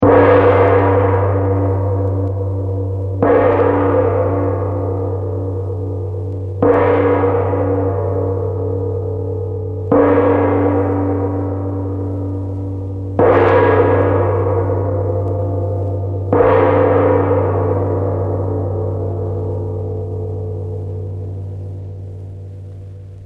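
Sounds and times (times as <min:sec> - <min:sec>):
gong strokes: 0:00.0 - 0:23.2.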